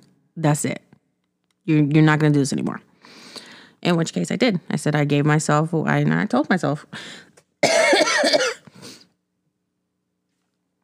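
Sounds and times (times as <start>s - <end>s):
speech: 0.4s - 0.9s, 1.6s - 3.2s, 3.8s - 7.3s
faint breath: 3.0s - 3.8s, 6.9s - 7.4s
woman coughing from an irritated throat: 7.6s - 8.8s.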